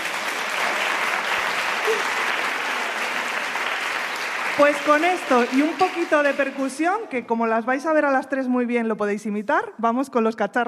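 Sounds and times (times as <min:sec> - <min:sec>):
crowd applauding: 0:00.0 - 0:07.0
speech: 0:04.6 - 0:10.6.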